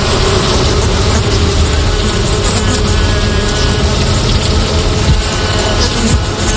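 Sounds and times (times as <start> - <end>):
honeybees buzzing: 0.0 - 6.5.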